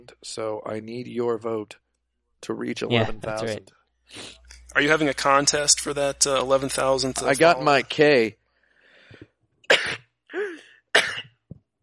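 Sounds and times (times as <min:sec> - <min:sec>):
speech: 0:00.1 - 0:01.8, 0:02.4 - 0:08.4
breathy inhale before a sneeze: 0:08.5 - 0:09.3
person sneezing: 0:09.7 - 0:11.3.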